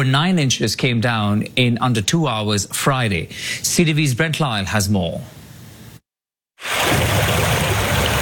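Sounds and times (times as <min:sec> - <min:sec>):
speech: 0:00.0 - 0:05.4
floodwater rushing across a golf fairway: 0:06.6 - 0:08.2.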